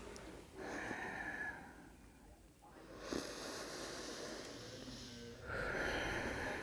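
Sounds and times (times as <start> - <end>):
slow deep breathing in and out through the nose during a yoga exercise: 0.0 - 2.1, 2.9 - 6.6.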